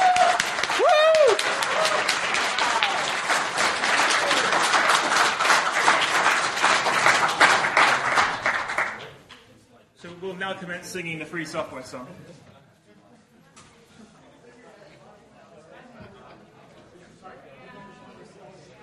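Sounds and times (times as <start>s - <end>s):
large audience applause: 0.0s - 9.2s
speech: 10.5s - 12.4s.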